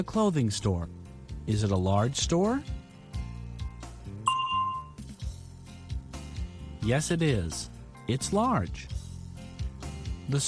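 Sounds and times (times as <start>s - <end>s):
speech: 0.0s - 2.8s, 6.8s - 9.0s, 10.3s - 10.4s
steady musical background: 0.0s - 10.4s
single bell ding signalling time to answer in a language-practice drill: 4.3s - 5.0s.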